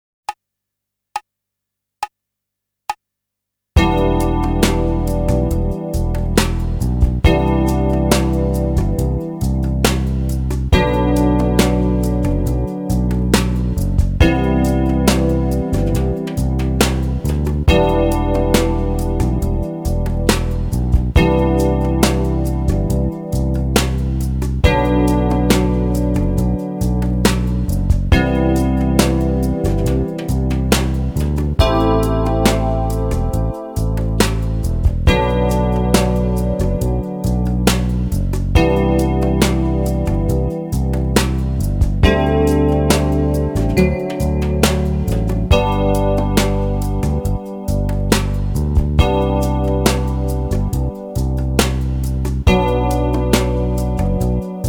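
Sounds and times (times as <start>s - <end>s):
ballad: 3.8s - 54.6s.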